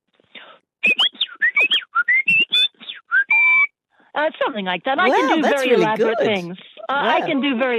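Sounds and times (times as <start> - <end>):
person whistling imitating birdsong: 0.8 - 3.7
speech: 4.2 - 7.7
laughter: 5.0 - 7.4.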